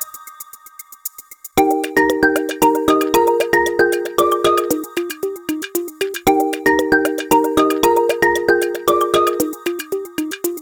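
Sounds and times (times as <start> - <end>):
Oppo A16k phone ringtone: 1.6 - 5.5, 6.5 - 10.5.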